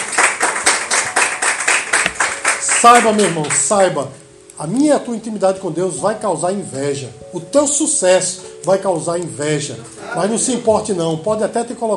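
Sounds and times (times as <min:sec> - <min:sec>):
audience applause: 0:00.0 - 0:03.6
speech: 0:02.8 - 0:11.9.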